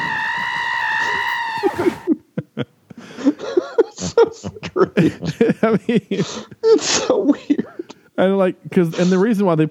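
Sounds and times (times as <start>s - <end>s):
goat screaming in a movie: 0.0s - 2.1s
laughing: 1.0s - 8.1s
speech: 5.0s - 7.5s, 8.2s - 9.7s.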